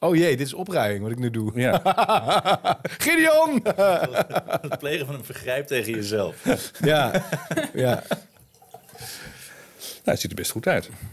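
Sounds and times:
speech: 0.0s - 8.3s, 10.0s - 11.1s
laughter: 1.7s - 8.3s
faint drips: 8.0s - 10.2s
drink pouring into a glass: 8.4s - 9.4s.

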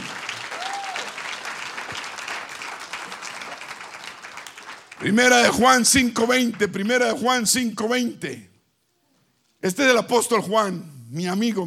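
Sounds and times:
audience applauding: 0.0s - 5.6s
whistle or cheer: 0.5s - 1.2s
speech: 5.0s - 8.5s, 9.6s - 11.6s.

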